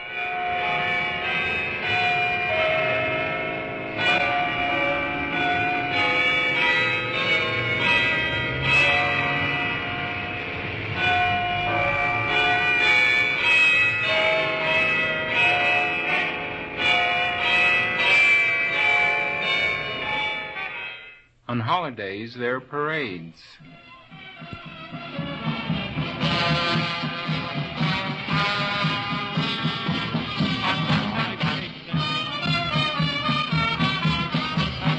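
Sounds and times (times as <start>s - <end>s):
full peal of church bells ringing on a Sunday: 0.0s - 34.9s
speech: 21.9s - 23.8s.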